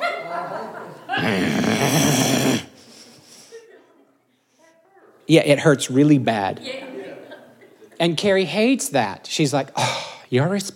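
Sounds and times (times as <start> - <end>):
laughter: 0.0 - 4.3, 6.6 - 8.0
speech: 0.6 - 2.7, 5.3 - 6.9, 8.0 - 10.7
man growling in imitation of an angry animal: 1.1 - 2.8
breathy vocal sounds: 1.2 - 3.5.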